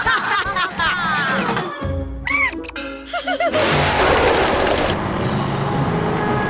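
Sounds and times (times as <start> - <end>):
laughter: 0.0 - 1.7
heavy bus engine rumbling: 3.6 - 6.4.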